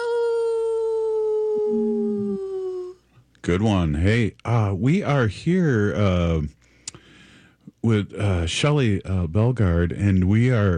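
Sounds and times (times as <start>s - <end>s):
faint lower voice: 0.0s - 3.0s
person imitating a wolf howl: 0.0s - 3.0s
speech: 3.5s - 6.6s, 7.8s - 10.7s.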